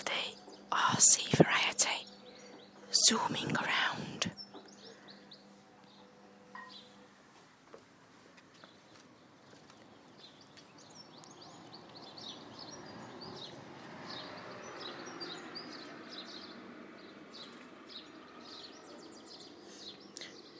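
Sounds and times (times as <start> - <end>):
birds chirping and tweeting outdoors: 0.0 - 7.1, 8.4 - 20.5
speech: 1.0 - 2.2, 3.1 - 4.4
passing car rumble: 11.4 - 19.9.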